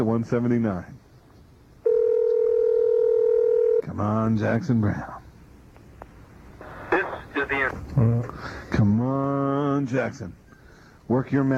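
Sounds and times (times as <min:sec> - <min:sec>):
speech: 0:00.0 - 0:01.0, 0:03.9 - 0:05.2, 0:07.5 - 0:10.4, 0:11.1 - 0:11.5
telephone tone as a call is placed: 0:01.8 - 0:03.8.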